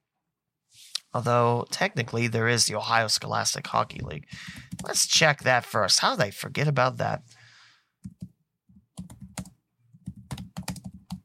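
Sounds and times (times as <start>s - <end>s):
speech: 1.1s - 7.4s
typing on a computer keyboard: 8.0s - 8.3s, 8.9s - 11.2s.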